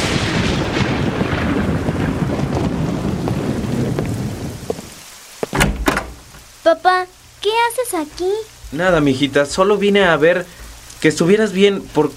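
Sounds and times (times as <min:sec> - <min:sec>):
deep rumble of thunder: 0:00.0 - 0:06.3
steady heavy rain: 0:00.0 - 0:12.1
speech: 0:06.8 - 0:12.1.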